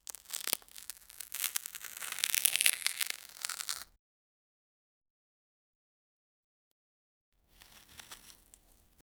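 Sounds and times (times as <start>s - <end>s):
orange peel tearing off an orange: 0.0s - 3.9s, 7.6s - 8.9s.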